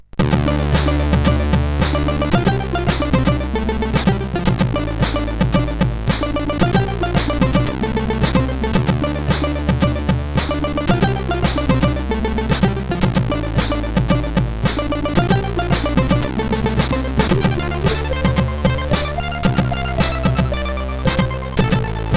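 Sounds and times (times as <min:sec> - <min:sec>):
SID chip intro music: 0:00.2 - 0:22.1.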